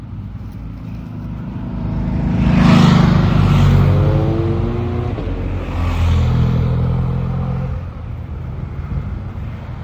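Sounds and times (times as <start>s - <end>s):
group of motorbikes revving past on a climb: 1.2s - 7.9s.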